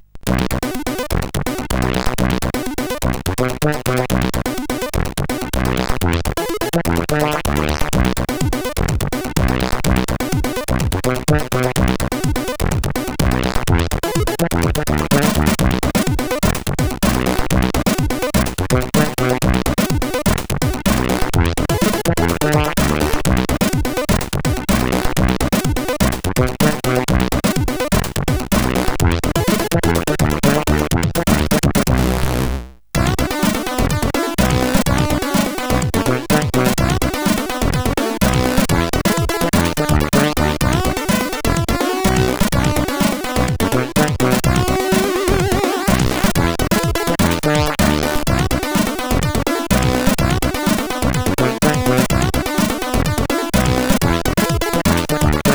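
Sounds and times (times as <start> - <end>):
dead funk chip synthesizer music: 0.0 - 55.5.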